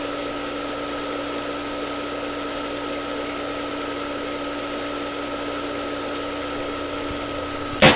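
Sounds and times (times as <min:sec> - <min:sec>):
hair dryer blowing: 0:00.0 - 0:07.8.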